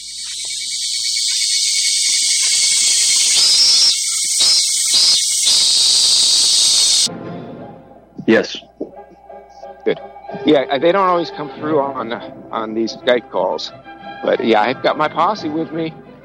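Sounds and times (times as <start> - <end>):
cicadas buzzing: 0.0 - 7.1
speech: 7.1 - 8.8, 9.8 - 16.0.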